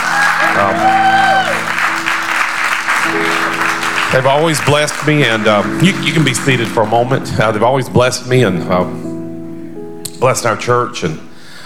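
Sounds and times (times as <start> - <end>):
church audience hand clapping: 0.0 - 7.4
sustained musical tones: 0.0 - 11.4
speech: 4.2 - 9.1, 10.2 - 11.3.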